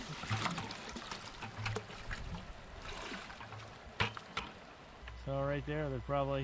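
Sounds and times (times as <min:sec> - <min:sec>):
water pouring as a bucket of young salmon is emptied into a river: 0:00.0 - 0:04.2
sharp splashes in a river: 0:00.0 - 0:04.6
running water of a river: 0:00.0 - 0:05.0
speech: 0:05.3 - 0:06.4.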